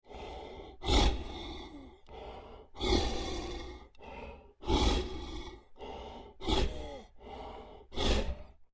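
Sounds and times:
large creature breathing deep and laboured: 0.0 - 8.7.

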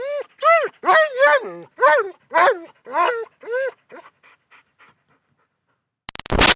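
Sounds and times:
German Shepherd whining: 0.0 - 4.1.

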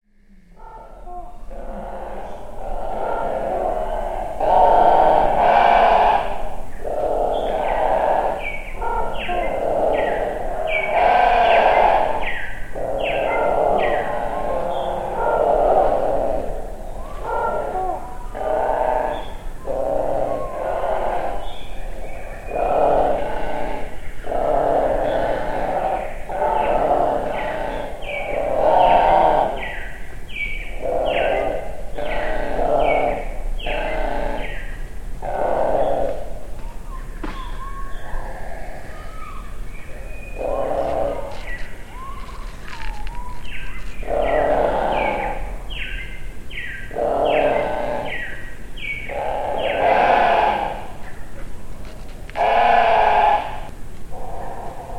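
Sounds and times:
rooks at a rookery: 0.6 - 54.9.

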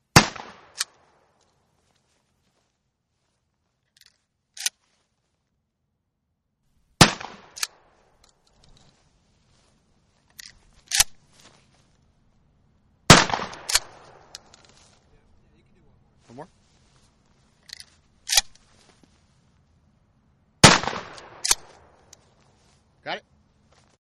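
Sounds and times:
Remington 870 shotgun shots: 0.1 - 1.2, 7.0 - 8.0, 13.1 - 14.5, 20.6 - 22.0
Remington 870 shotgun reloading: 0.2 - 1.0, 4.0 - 4.8, 7.0 - 7.8, 10.3 - 11.2, 13.1 - 14.7, 17.7 - 18.6, 20.6 - 22.2.

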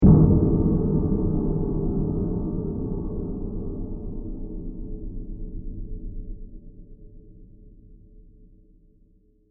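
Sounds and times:
dark mysterious impact hit: 0.0 - 6.6.

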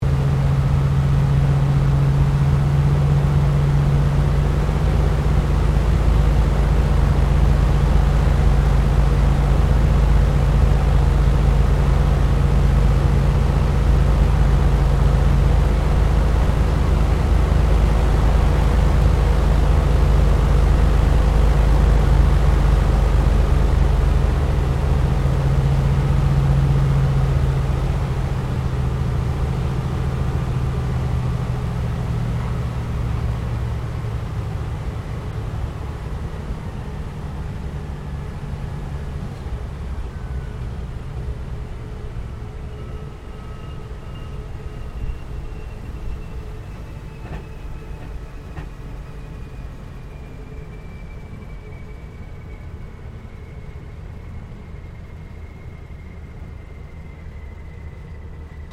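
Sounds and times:
CA-13 Boomerang aircraft landing heard from the interior: 0.0 - 58.7.

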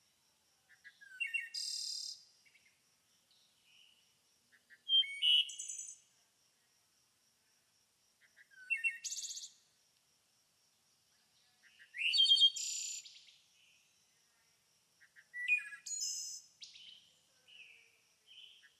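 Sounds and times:
bird chirping in high twittering bursts: 0.7 - 6.1, 11.4 - 14.0, 15.0 - 18.7.

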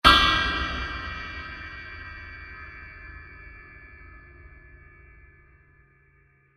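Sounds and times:
giant metal impact: 0.0 - 3.9.

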